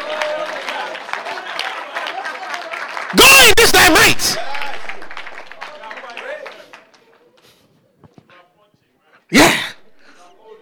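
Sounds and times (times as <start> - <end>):
church audience clapping during a sermon: 0.0 - 7.5
indistinct crowd noise: 0.0 - 8.2
speech: 3.1 - 4.5.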